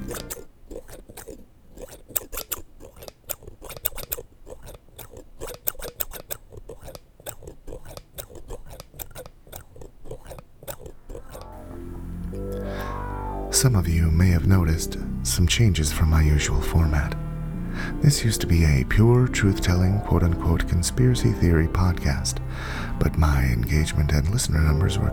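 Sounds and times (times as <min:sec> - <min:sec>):
scissors snipping hair during a haircut: 0:00.0 - 0:11.5
speech: 0:00.1 - 0:00.4, 0:13.6 - 0:17.2, 0:18.0 - 0:25.1
deep rumble: 0:11.5 - 0:25.1.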